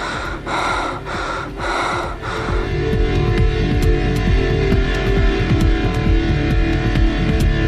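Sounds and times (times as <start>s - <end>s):
loud breathing in and out: 0.0s - 3.0s
low pulsing hum: 0.0s - 7.6s.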